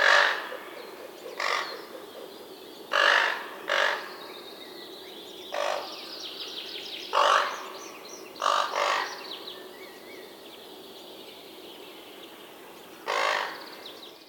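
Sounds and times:
raven adults calling while feeding their young: 0.0s - 2.3s, 2.9s - 4.3s, 5.5s - 6.0s, 7.1s - 7.8s, 8.4s - 9.4s, 13.0s - 13.8s.

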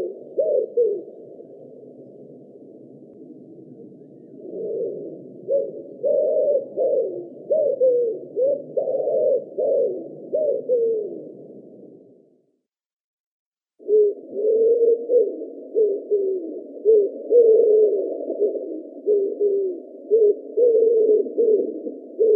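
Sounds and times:
common wood pigeon giving low husky coos in Russia: 0.0s - 1.8s, 3.4s - 11.6s, 13.8s - 22.3s.

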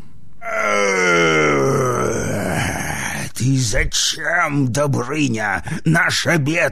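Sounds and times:
person voicing a dragon roar: 0.4s - 3.1s
speech: 3.7s - 6.7s.

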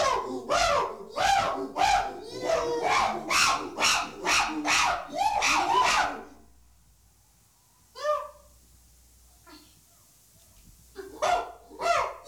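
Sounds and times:
Pan troglodytes chimpanzees giving loud rhythmic hoots: 0.0s - 6.5s, 11.0s - 12.2s.

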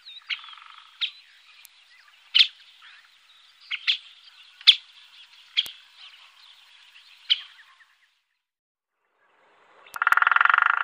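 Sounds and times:
Syrian woodpecker giving sharp kik calls: 0.0s - 6.6s, 7.2s - 8.0s, 10.0s - 10.8s.

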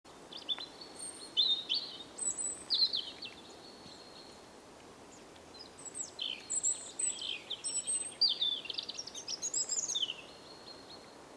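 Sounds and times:
steady faint hiss: 0.1s - 11.3s
European robin Erithacus rubecula singing: 0.3s - 4.4s, 5.1s - 11.2s.

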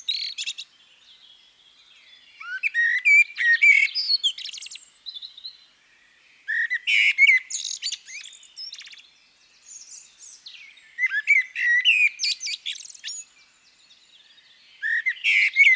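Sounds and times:
Turdus merula common blackbird singing: 0.0s - 15.7s.

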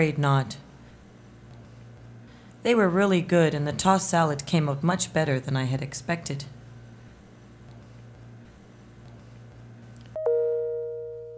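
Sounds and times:
speech: 0.0s - 0.6s, 2.6s - 6.6s
steady low hum: 0.0s - 11.3s
two-note doorbell ding-dong: 10.2s - 11.3s.

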